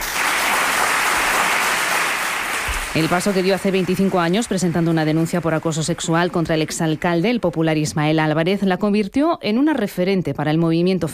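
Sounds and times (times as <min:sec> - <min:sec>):
applause from family and friends: 0:00.0 - 0:07.5
speech: 0:02.9 - 0:11.1.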